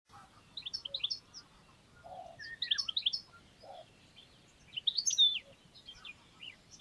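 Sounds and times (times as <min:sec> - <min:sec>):
steady background hiss: 0:00.1 - 0:06.7
European goldfinch Carduelis carduelis twittering: 0:00.5 - 0:06.7.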